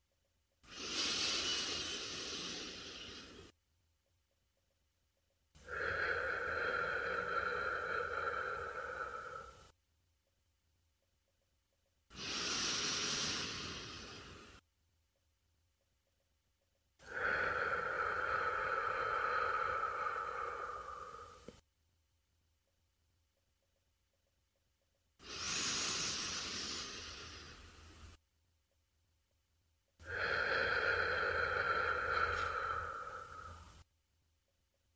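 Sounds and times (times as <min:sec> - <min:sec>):
slow deep breathing in through the nose and out through the mouth: 0:00.6 - 0:03.6, 0:05.6 - 0:09.8, 0:12.1 - 0:14.6, 0:17.0 - 0:21.6, 0:25.2 - 0:28.2, 0:30.0 - 0:33.9.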